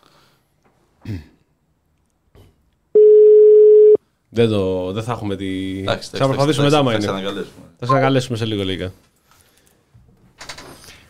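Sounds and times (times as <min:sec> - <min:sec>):
speech: 0:01.1 - 0:01.4, 0:04.4 - 0:09.1
telephone line tone: 0:03.0 - 0:04.0.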